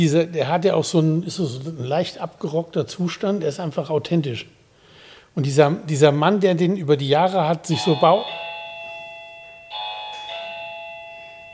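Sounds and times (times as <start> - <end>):
speech: 0.0 - 4.6, 5.4 - 8.4
electronic doorbell two-tone ding-dong: 7.8 - 11.5.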